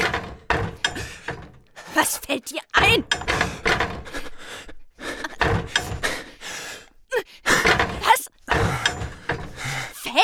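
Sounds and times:
wooden door rattling and clattering while being opened: 0.0s - 1.7s, 2.8s - 4.5s, 5.2s - 6.3s, 7.5s - 9.9s
speech: 2.0s - 3.5s.

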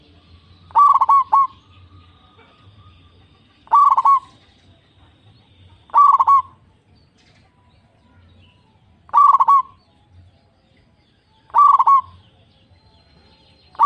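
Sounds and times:
zebra dove cooing song: 0.0s - 4.5s, 5.3s - 6.7s, 9.1s - 9.8s, 11.5s - 12.2s.

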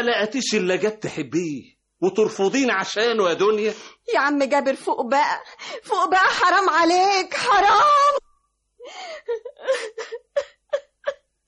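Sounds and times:
speech: 0.0s - 8.2s, 8.8s - 10.5s
woman sobbing and gasping under questioning about a crime: 7.5s - 8.2s, 8.8s - 11.4s.

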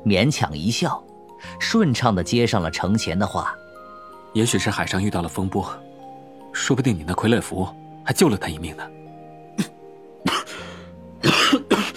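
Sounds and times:
speech: 0.0s - 3.6s, 4.4s - 5.9s, 6.6s - 9.0s
man coughing: 9.6s - 10.6s, 11.2s - 11.9s.

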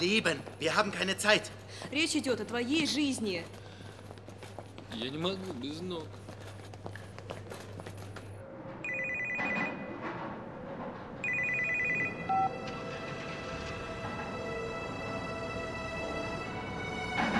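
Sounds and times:
speech: 0.0s - 3.6s, 4.9s - 6.2s
noise: 0.0s - 17.3s
mobile phone electronic ringtone: 8.8s - 10.0s, 11.2s - 12.6s.

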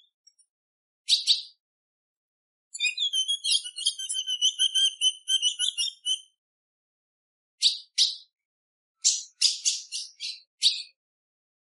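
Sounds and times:
female ultramarine grosbeak calls: 1.1s - 1.6s, 2.7s - 6.3s, 9.0s - 11.0s.

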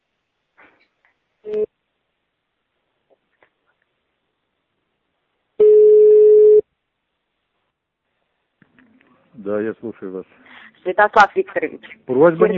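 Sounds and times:
short telephone line beep: 1.5s - 1.7s, 5.6s - 6.6s
speech: 1.5s - 1.7s, 9.5s - 12.5s.

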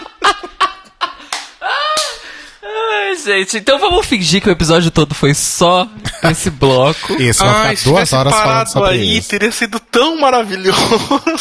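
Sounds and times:
burst of laughter: 0.0s - 2.2s, 6.0s - 8.3s, 10.7s - 11.3s
sharp slap and quick smacking hits: 1.3s - 2.2s
speech: 3.2s - 11.3s.

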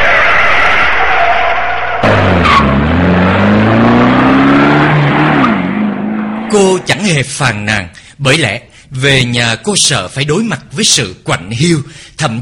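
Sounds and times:
taxi car tires squealing: 0.0s - 7.0s
taxi car engine accelerating: 2.0s - 7.0s
speech: 6.5s - 12.4s.

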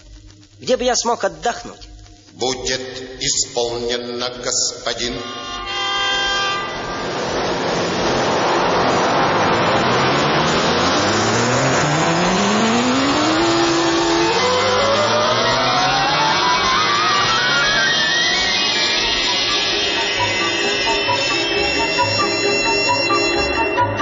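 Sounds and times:
speech: 0.6s - 5.6s
tonal engine whine rising in pitch: 5.0s - 23.9s
many cars speeding past in a city: 6.1s - 18.5s.

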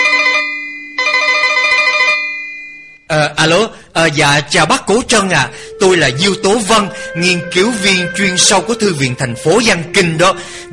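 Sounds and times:
electronic telephone ringing in an office: 0.0s - 3.1s
speech: 3.2s - 10.7s.

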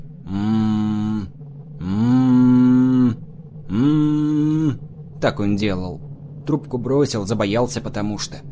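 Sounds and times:
person moaning as if gagged while rocking back and forth: 0.2s - 4.8s
speech: 5.2s - 8.5s.

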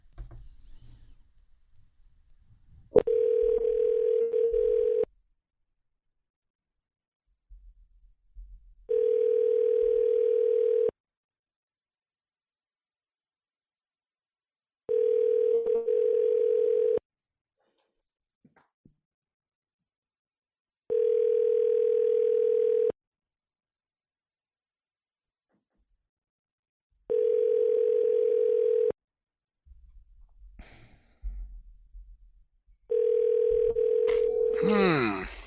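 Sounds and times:
telephone dial tone on a call to another number: 3.0s - 5.1s, 8.9s - 10.9s, 14.9s - 17.0s, 20.9s - 23.0s, 27.1s - 29.0s, 32.9s - 34.5s.

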